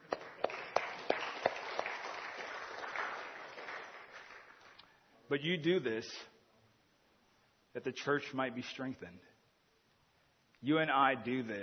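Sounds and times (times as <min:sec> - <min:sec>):
crowd applauding in a large room: 0:00.0 - 0:04.8
speech: 0:05.3 - 0:06.3, 0:07.7 - 0:09.3, 0:10.6 - 0:11.6.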